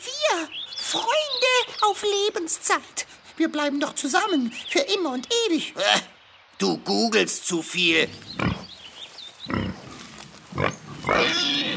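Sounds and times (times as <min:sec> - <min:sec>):
speech: 0:00.4 - 0:08.5
wild boar grunting and snorting: 0:08.1 - 0:08.8, 0:09.4 - 0:11.7.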